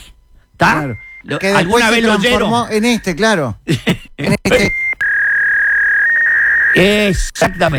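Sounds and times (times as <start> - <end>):
speech: 0.6 - 4.8, 6.7 - 7.7
dial-up modem connecting noise: 4.7 - 7.1.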